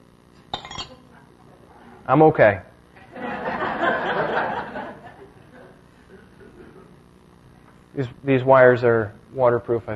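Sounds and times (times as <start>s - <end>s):
drinking glass knocked over: 0.5s - 1.0s
speech: 2.1s - 2.7s, 8.0s - 9.9s
laughter: 3.0s - 7.0s.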